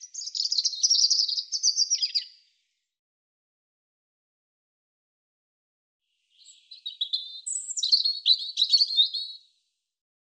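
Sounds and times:
European robin singing: 0.0s - 2.5s, 6.2s - 9.5s.

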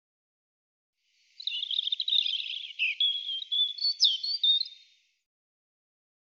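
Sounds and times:
European robin singing: 1.3s - 5.0s.

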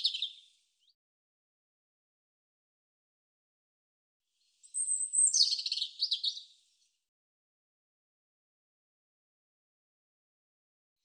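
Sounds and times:
European robin whistling and warbling: 4.7s - 6.4s.

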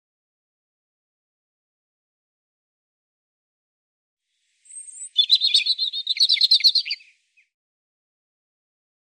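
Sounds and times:
European robin singing: 4.6s - 7.5s.

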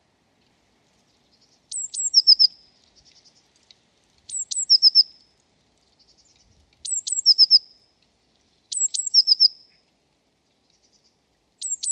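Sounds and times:
Eurasian blue tit song: 1.1s - 3.5s, 4.3s - 5.1s, 6.0s - 7.7s, 8.7s - 9.7s, 10.7s - 11.9s.

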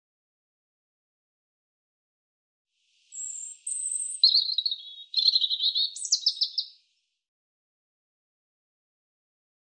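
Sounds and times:
European robin song: 3.1s - 6.8s.

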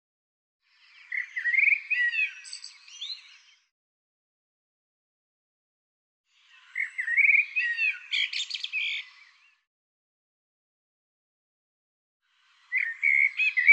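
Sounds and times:
bird calls with chirps, rising sweeps and warbled notes: 0.8s - 3.7s, 6.4s - 9.6s, 12.5s - 13.7s.

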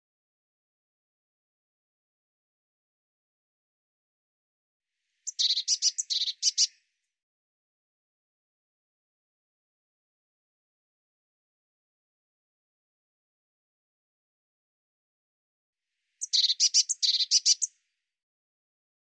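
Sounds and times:
Eurasian blue tit churring call: 5.3s - 6.7s, 16.2s - 17.7s.

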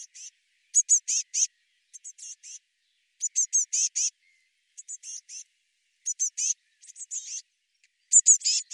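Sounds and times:
Eurasian blue tit calling in scratchy bursts: 0.0s - 2.6s, 3.2s - 4.2s, 4.8s - 7.4s, 8.1s - 8.7s.

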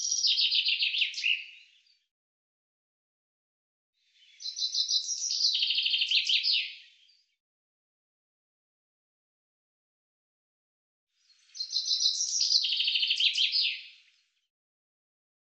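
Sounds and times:
common chaffinch song with fast repeated notes and terminal flourish: 0.0s - 1.7s, 4.2s - 6.8s, 11.4s - 14.0s.

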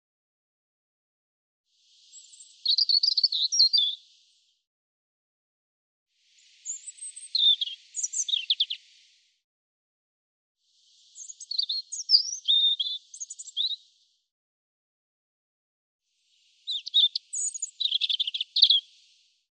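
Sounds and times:
European robin song: 2.1s - 4.2s, 6.4s - 9.0s, 11.0s - 13.9s, 16.5s - 19.1s.

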